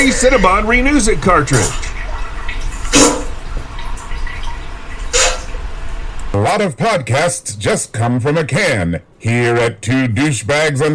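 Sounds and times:
speech: 0.0 - 1.9, 6.4 - 10.9
bright water splashing bursts: 0.0 - 6.4.

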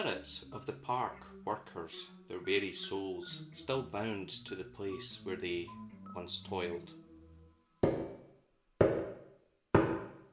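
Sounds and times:
speech: 0.0 - 7.0
sharp knocks: 7.8 - 10.3.

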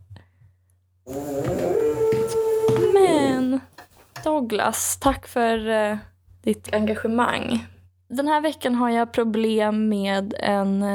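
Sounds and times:
dog howling: 1.1 - 3.6
speech: 4.2 - 10.9.

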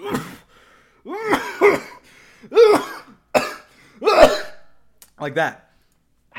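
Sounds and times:
harsh hacking coughs ending in a rough throaty rasp: 0.0 - 4.8
speech: 5.2 - 5.6.

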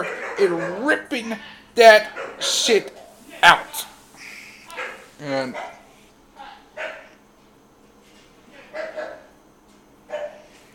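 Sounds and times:
pet dog barking: 0.0 - 1.0, 2.0 - 2.6, 4.7 - 7.2, 8.6 - 9.4, 10.1 - 10.5
speech: 0.0 - 3.9, 5.2 - 5.8.

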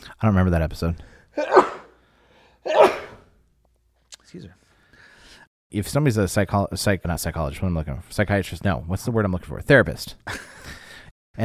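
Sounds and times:
speech: 0.2 - 1.6, 4.3 - 4.6, 5.7 - 10.8
person sneezing: 1.4 - 2.0, 2.6 - 3.3.

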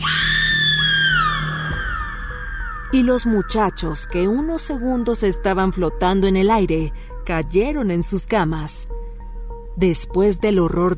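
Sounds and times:
mother's long piercing heart-rending scream: 0.0 - 3.5
speech: 2.9 - 8.9, 9.8 - 10.9.

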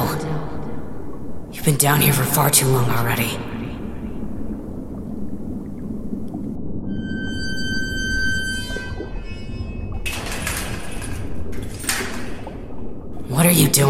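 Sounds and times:
low rumbling background: 0.0 - 13.8
speech: 1.6 - 3.5, 13.4 - 13.8
door creaking open: 6.8 - 12.8.

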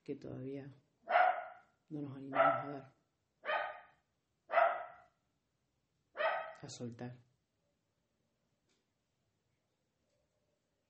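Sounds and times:
speech: 0.0 - 0.9, 1.9 - 3.0, 6.6 - 7.3
dog barking: 1.1 - 1.7, 2.3 - 2.8, 3.4 - 5.2, 6.2 - 6.6.

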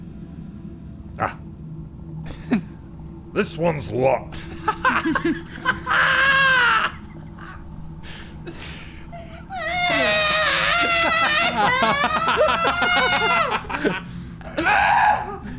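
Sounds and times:
speech: 1.2 - 1.4, 2.5 - 2.7, 3.4 - 6.2, 11.8 - 15.2
laughter: 4.3 - 15.5
woman shrieking high-pitched and strained: 9.5 - 15.5.

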